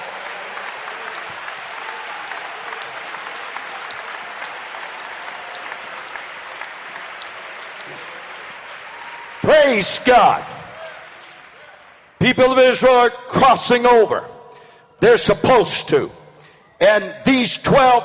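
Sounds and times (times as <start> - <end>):
congregation clapping hands in applause: 0.0 - 13.1
speech: 9.6 - 10.5, 12.2 - 14.3, 15.0 - 16.2, 16.8 - 18.0.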